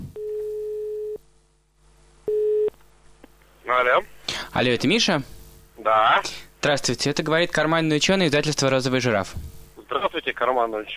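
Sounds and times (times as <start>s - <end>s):
telephone line tones of an outgoing call: 0.2s - 1.2s, 2.3s - 2.7s
speech: 3.8s - 9.6s, 10.4s - 10.9s.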